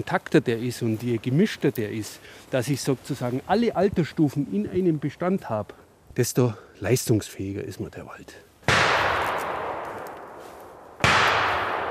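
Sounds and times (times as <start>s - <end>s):
speech: 0.0s - 8.5s
hunter's rifle shots outdoors: 8.7s - 11.9s.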